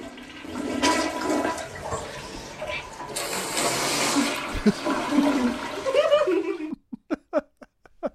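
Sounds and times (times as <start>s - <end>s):
toilet flushing with rushing gurgle of water: 0.0s - 6.8s
deaf woman vocally imitating a flushing toilet: 4.0s - 6.5s
laughter: 4.5s - 8.1s.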